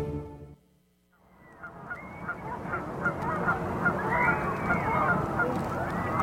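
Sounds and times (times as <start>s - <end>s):
goose honking: 1.5s - 6.2s
crowd voices of people waiting for fireworks across a bay: 2.3s - 6.2s.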